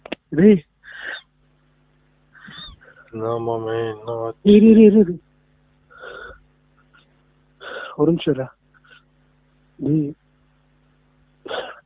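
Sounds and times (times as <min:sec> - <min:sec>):
faint hum: 0:00.0 - 0:11.8
speech: 0:00.3 - 0:00.7, 0:03.1 - 0:05.3, 0:08.0 - 0:08.6, 0:09.8 - 0:10.2
wheezy strained whistling inhalations: 0:00.8 - 0:01.3, 0:02.4 - 0:03.1, 0:05.9 - 0:06.4, 0:07.6 - 0:08.0.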